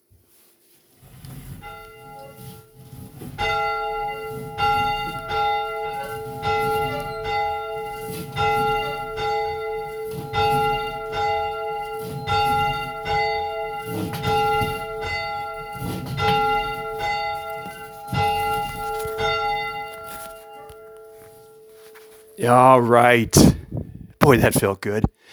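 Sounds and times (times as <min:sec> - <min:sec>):
church bell ringing: 0:01.7 - 0:21.9
speech: 0:22.4 - 0:23.6, 0:24.3 - 0:25.1.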